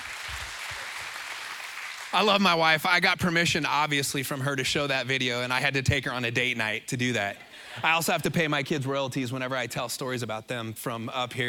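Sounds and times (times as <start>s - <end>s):
crowd clapping in a room: 0.0s - 2.8s
speech: 2.1s - 11.4s.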